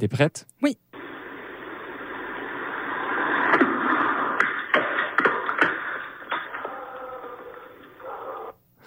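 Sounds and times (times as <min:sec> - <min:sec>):
speech: 0:00.0 - 0:00.8
steady hissy outdoor background: 0:00.0 - 0:08.8
meteorite striking a hard outdoor garden table: 0:03.3 - 0:07.8
dog barking: 0:06.6 - 0:08.6.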